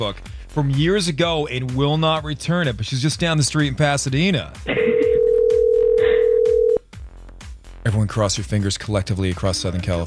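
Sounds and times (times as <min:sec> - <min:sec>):
speech: 0:00.0 - 0:05.0, 0:07.8 - 0:10.0
soft rhythmic background: 0:00.0 - 0:10.0
outgoing phone call ringback tone: 0:04.8 - 0:06.8.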